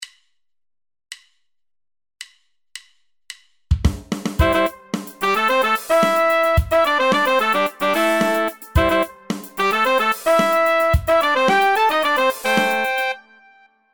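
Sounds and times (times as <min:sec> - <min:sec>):
horn section playing: 0:04.4 - 0:13.9.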